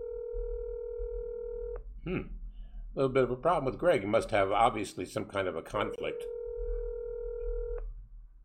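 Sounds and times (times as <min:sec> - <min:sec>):
telephone tone as a call is placed: 0:00.0 - 0:01.8, 0:06.1 - 0:07.8
speech: 0:02.0 - 0:06.4
automatic voice message system voice: 0:03.0 - 0:06.4.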